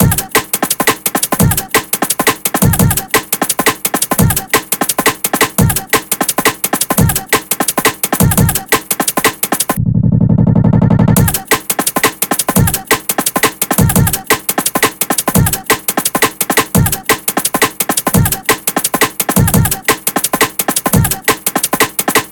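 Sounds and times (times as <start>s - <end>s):
drum kit break in D sharp: 0.0s - 9.8s, 10.9s - 22.3s.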